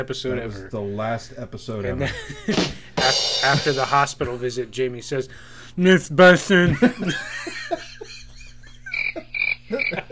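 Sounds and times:
speech: 0:00.0 - 0:07.6
laughter: 0:02.0 - 0:03.2, 0:06.7 - 0:10.1
crickets chirping in a night chorus: 0:08.9 - 0:10.1
low croaking calls: 0:08.9 - 0:10.1.

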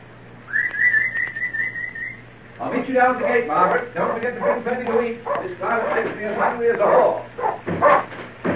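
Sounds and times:
low steady hum: 0:00.0 - 0:08.5
person whistling to call the dogs: 0:00.5 - 0:02.2
speech: 0:02.6 - 0:08.0.

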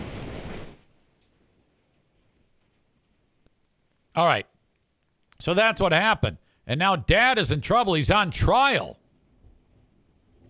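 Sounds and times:
heavy rain pouring down: 0:00.0 - 0:01.1
speech: 0:04.2 - 0:04.5, 0:05.4 - 0:09.0.

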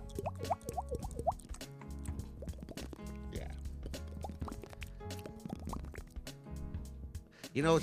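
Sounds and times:
voice imitating dripping water with mouth plinks and pops: 0:00.0 - 0:01.7, 0:02.3 - 0:06.1
speech: 0:07.6 - 0:07.8.

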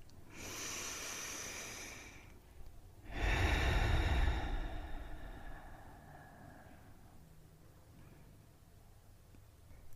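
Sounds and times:
slow deep breath in and out: 0:00.3 - 0:02.4, 0:03.0 - 0:07.4.

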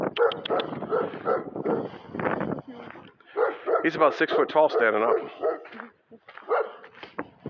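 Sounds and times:
large dog barking: 0:00.1 - 0:02.0, 0:03.3 - 0:05.8, 0:06.4 - 0:06.9
speech: 0:03.8 - 0:05.4.

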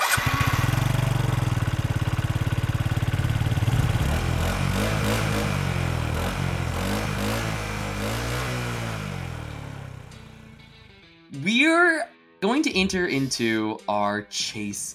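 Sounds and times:
small moped engine starting and revving: 0:00.0 - 0:10.9
speech: 0:12.0 - 0:14.9.

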